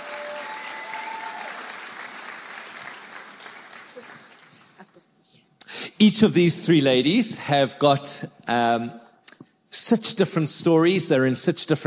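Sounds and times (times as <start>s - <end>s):
whistles and cheers: 0.0s - 1.8s
large crowd applauding: 0.0s - 4.8s
speech: 6.0s - 9.0s, 9.9s - 11.8s.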